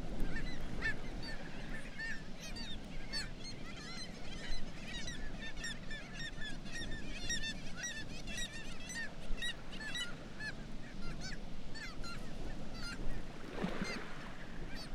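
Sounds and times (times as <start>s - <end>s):
Black-legged kittiwakes calling in a dense chorus: 0.1s - 14.9s.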